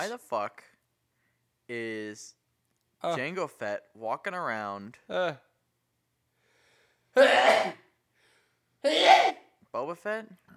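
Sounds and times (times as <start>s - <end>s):
speech: 0.0s - 0.7s, 1.7s - 2.4s, 3.0s - 5.5s, 7.2s - 7.8s, 8.8s - 10.5s
person sneezing: 7.2s - 7.8s, 8.8s - 9.4s.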